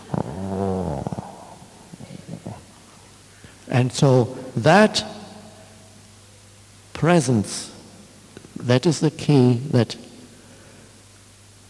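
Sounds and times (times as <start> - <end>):
voice imitating heavy sleepy breathing and near-snore: 0.0 - 3.7
speech: 3.8 - 5.1, 7.0 - 7.7, 8.6 - 10.0.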